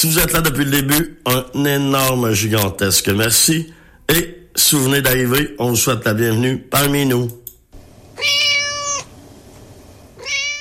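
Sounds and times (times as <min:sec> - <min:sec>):
speech: 0:00.0 - 0:07.4
cat meowing: 0:08.2 - 0:09.1, 0:10.2 - 0:10.6.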